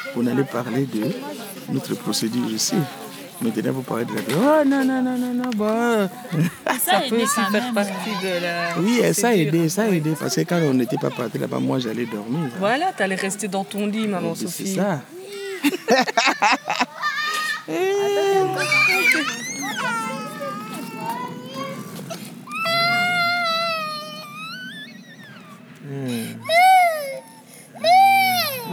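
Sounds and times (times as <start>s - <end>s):
laughter: 0.0s - 12.9s, 14.7s - 28.7s
speech: 0.0s - 16.6s, 17.7s - 20.1s
toddler crying: 16.2s - 28.7s.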